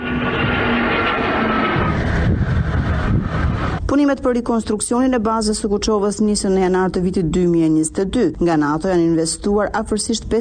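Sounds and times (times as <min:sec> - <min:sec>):
helicopters, drones and jets flying over an air base at a military ceremony: 0:00.0 - 0:03.9
speech: 0:04.0 - 0:10.3.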